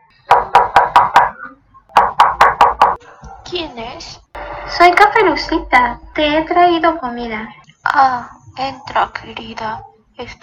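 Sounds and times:
firm knocking on a wooden door: 0.3s - 3.0s
speech: 3.5s - 10.4s.

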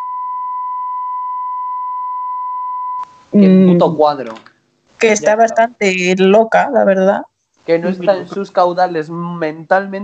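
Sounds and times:
steady beep tone: 0.0s - 3.2s
speech: 3.4s - 10.0s.

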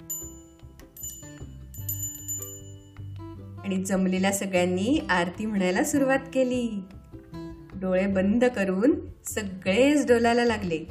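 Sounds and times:
hand bell ringing at a Ganesh festival aarti: 0.0s - 3.3s
speech: 3.6s - 7.0s, 7.8s - 10.9s.

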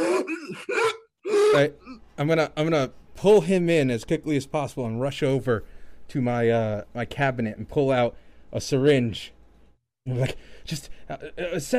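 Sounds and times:
person making strained voiced gasping and choking sounds: 0.0s - 1.6s
speech: 1.5s - 9.4s, 10.0s - 11.7s.

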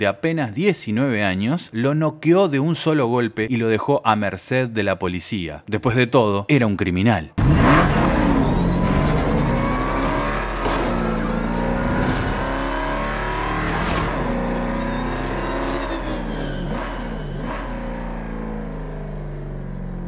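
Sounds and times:
speech: 0.0s - 7.4s
sports car engine revving hard at full speed through Copacabana: 7.4s - 20.0s.

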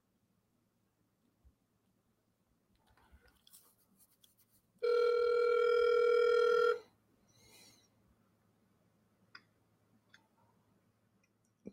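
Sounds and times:
electronic phone tone: 4.8s - 6.8s.

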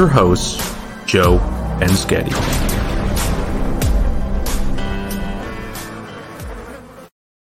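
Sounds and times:
speech: 0.0s - 2.7s
buzzing insect sound effect: 1.3s - 7.1s.

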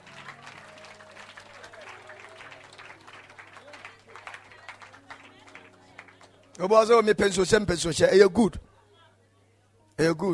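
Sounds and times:
congregation clapping hands: 0.0s - 6.7s
speech: 6.6s - 8.7s, 10.0s - 10.3s.

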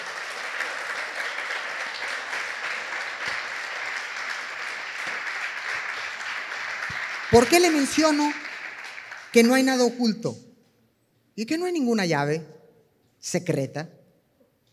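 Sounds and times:
audience applauding loudly: 0.0s - 10.0s
speech: 7.3s - 8.4s, 9.3s - 10.5s, 11.4s - 12.6s, 13.2s - 14.0s.

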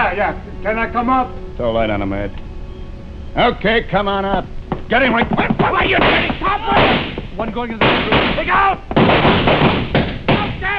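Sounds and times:
speech: 0.1s - 2.4s, 3.4s - 9.8s
sharp heavy gunshot bangs in a dramatic scene: 5.0s - 10.7s.

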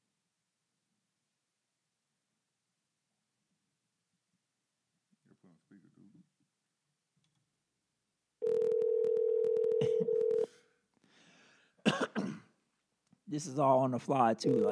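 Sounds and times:
speech: 5.5s - 6.6s, 13.3s - 14.6s
telephone dialing and ringing tone as a phone call is placed: 8.4s - 10.5s, 14.5s - 14.6s
sharp cough: 9.8s - 10.1s, 11.8s - 12.6s.

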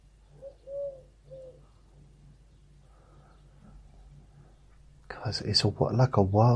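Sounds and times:
pigeons cooing in a back garden: 0.2s - 4.9s
speech: 5.3s - 6.5s.

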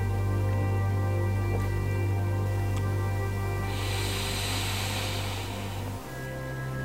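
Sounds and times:
steady low hum: 0.0s - 6.8s
person breathing out in a long airy exhalation during a relaxing breathing exercise: 3.7s - 6.8s.

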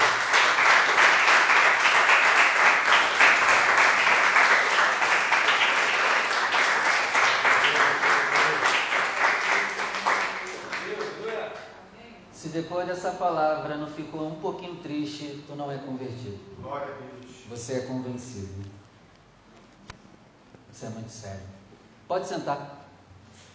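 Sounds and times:
audience at a church worship service clapping: 0.0s - 11.8s
speech: 12.8s - 18.8s, 20.8s - 22.8s.

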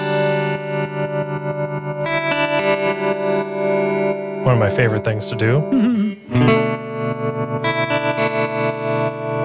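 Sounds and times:
electric guitar notes with tremolo effect swept by an expression pedal: 0.0s - 4.6s, 5.4s - 9.4s
speech: 4.5s - 6.0s.

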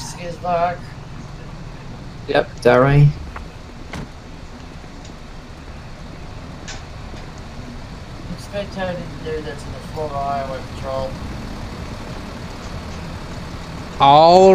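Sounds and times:
commercial truck engine rumbling: 0.0s - 14.5s
speech: 0.2s - 1.0s, 2.3s - 3.2s, 8.5s - 11.4s, 14.0s - 14.5s.

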